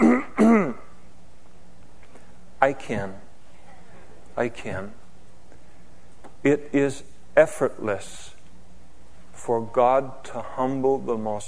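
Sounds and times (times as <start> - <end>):
man imitating throat clearing: 0.0 - 1.0
speech: 2.6 - 3.2, 4.4 - 5.0, 6.4 - 8.3, 9.4 - 11.4.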